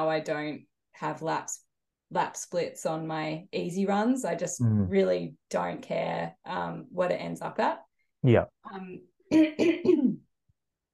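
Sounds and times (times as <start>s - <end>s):
speech: 0.0s - 10.2s
person coughing: 9.3s - 10.2s.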